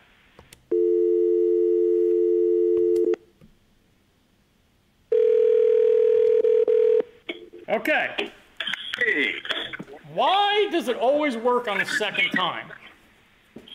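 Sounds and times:
telephone dial tone while placing a call: 0.7s - 3.2s, 5.1s - 7.0s
speech: 7.8s - 8.4s, 9.0s - 12.8s.

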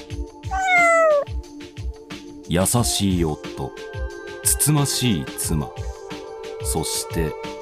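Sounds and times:
black cat meowing: 0.5s - 1.3s
speech: 2.5s - 5.9s, 6.6s - 7.5s.

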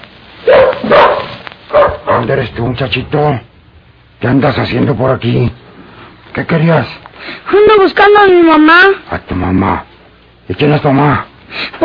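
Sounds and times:
faint hiss: 0.0s - 11.8s
dog barking: 0.4s - 2.3s
speech: 2.2s - 3.5s, 4.2s - 5.6s, 6.4s - 9.9s, 10.5s - 11.8s.

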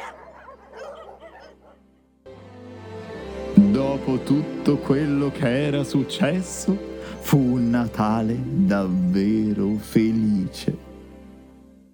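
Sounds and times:
several dogs barking and yipping: 0.0s - 1.9s
steady music: 0.0s - 11.9s
speech: 4.0s - 10.9s.

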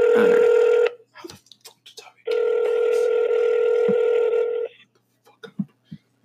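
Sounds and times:
electronic phone ringback tone: 0.0s - 1.0s, 2.3s - 4.7s.

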